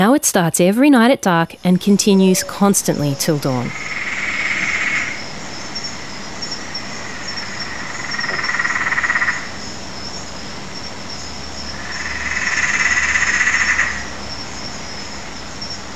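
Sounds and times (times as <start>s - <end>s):
speech: 0.0s - 4.1s
high drone of night insects: 1.7s - 15.9s
Peron's tree frog cackling trill call at a house in Sydney Australia: 2.4s - 10.2s, 11.6s - 14.3s.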